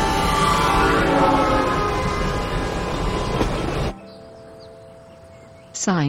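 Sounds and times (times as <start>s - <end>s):
train rumbling along the rails: 0.0s - 4.4s.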